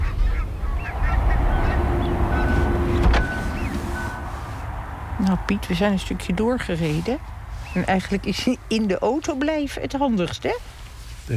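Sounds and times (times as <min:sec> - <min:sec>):
greylag geese honking while flying over: 0:00.0 - 0:08.9
low rumble: 0:00.0 - 0:09.4
speech: 0:05.3 - 0:11.3.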